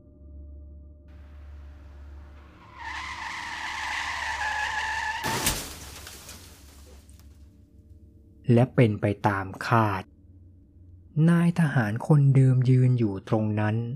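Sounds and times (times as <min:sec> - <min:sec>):
low engine rumble: 0:01.1 - 0:04.4
tires squealing and skidding on a road: 0:01.2 - 0:07.2
two cars crashing into each other: 0:01.2 - 0:07.4
speech: 0:08.5 - 0:10.1, 0:11.2 - 0:13.9.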